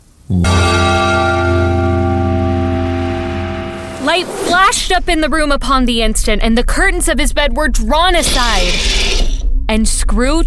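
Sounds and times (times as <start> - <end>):
speech: 0.3 - 0.7, 4.2 - 9.0, 9.7 - 10.4
deep hollow church bell striking the hour: 0.3 - 4.2.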